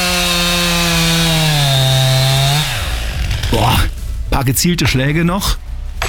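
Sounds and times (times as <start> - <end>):
chainsaw felling a tree at high revs: 0.0 - 3.9
speech: 3.5 - 5.6.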